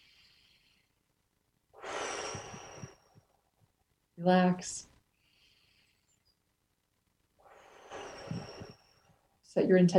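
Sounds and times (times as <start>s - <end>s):
deep breath in and out: 0.0s - 1.1s, 1.7s - 3.5s, 5.1s - 6.3s, 7.4s - 9.3s
speech: 4.2s - 4.9s, 9.5s - 9.9s.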